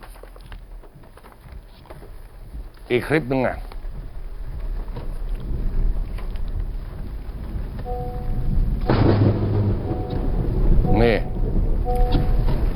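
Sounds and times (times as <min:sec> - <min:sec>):
speech: 0:02.9 - 0:03.7
thunder: 0:03.8 - 0:12.7
lightning striking a utility pole transformer beside the road: 0:07.9 - 0:12.7.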